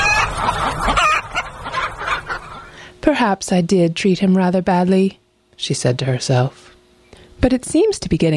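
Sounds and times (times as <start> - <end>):
group of chickens clucking and squawking: 0.0 - 2.9
speech: 3.1 - 6.8, 7.4 - 8.3.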